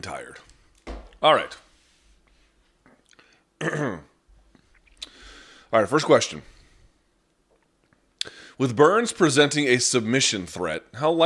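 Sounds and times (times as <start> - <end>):
speech: 0.0 - 0.5, 1.2 - 1.6, 3.6 - 4.1, 5.7 - 6.5, 8.2 - 11.2
person sipping a sports drink: 4.5 - 5.3.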